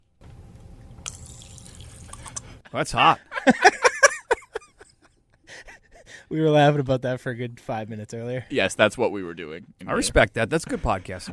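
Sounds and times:
water squirting into a person's mouth: 1.0 - 2.6
speech: 2.7 - 3.9, 6.3 - 11.3
laughter: 3.0 - 6.1.

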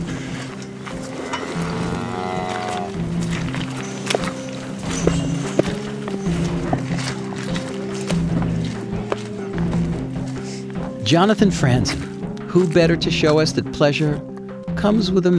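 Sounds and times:
low droning background: 0.0 - 11.0
leather boots squelching through crusted liquid cow manure: 0.0 - 13.6
speech: 11.1 - 15.3.

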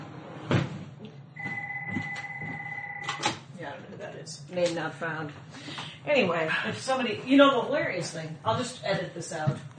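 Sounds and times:
telephone ringing with a steady electronic tone: 1.4 - 3.3
speech: 3.7 - 9.7.

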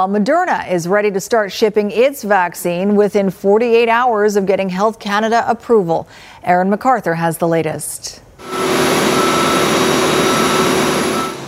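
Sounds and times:
speech: 0.0 - 8.6
arriving aircraft jet engine roar: 8.4 - 11.4.

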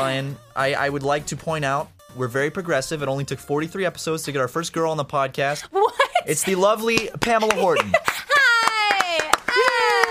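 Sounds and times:
speech: 0.0 - 8.0
laughter: 5.7 - 10.0
person clapping: 6.9 - 10.0
voice holding a long wavering cheer-like vocal tone: 8.3 - 10.0.

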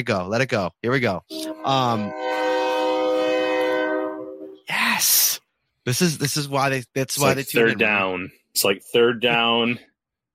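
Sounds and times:
speech: 0.0 - 2.4, 5.8 - 10.3
passing train horn blaring: 1.3 - 4.7.

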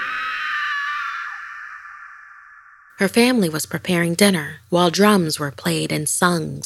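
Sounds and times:
woman's shrill high-pitched scream: 0.0 - 3.0
speech: 3.0 - 6.6.

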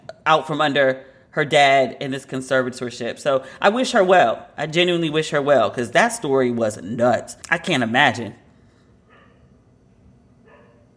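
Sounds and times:
steady low hum: 0.0 - 10.9
speech: 0.2 - 8.4
dog barking: 9.1 - 9.5, 10.4 - 10.9.

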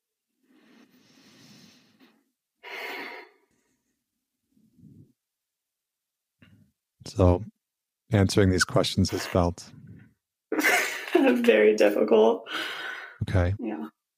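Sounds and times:
slow deep breath: 0.4 - 4.0, 12.5 - 13.2
speech: 7.2 - 7.5, 8.1 - 9.8, 11.3 - 14.0.

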